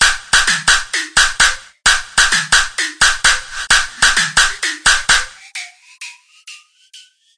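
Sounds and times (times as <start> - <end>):
quirky drum loops and breaks: 0.0 - 6.6.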